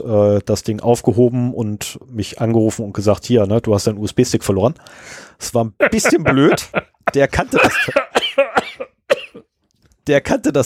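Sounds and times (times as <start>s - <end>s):
speech: 0.0s - 9.0s, 10.1s - 10.6s
laughter: 5.8s - 8.6s
person coughing after choking: 5.9s - 9.5s.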